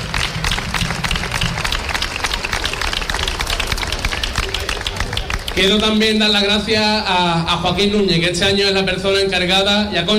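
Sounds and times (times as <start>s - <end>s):
faint voices murmuring: 0.0s - 6.2s
crowd applauding with many hands clapping: 0.0s - 6.5s
speech: 5.6s - 10.1s.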